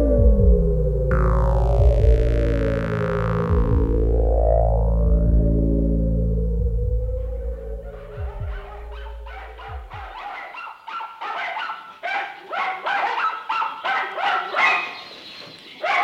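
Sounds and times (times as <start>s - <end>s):
brief low tone: 0.0s - 10.2s
several dogs barking at a kennel: 7.4s - 15.2s, 15.8s - 16.0s.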